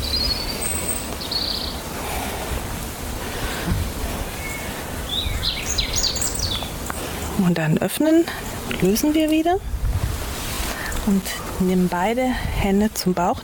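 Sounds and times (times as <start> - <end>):
birds chirping and trilling: 0.0 - 9.8
outdoor noise: 0.0 - 13.4
speech: 7.4 - 9.8, 11.1 - 13.4.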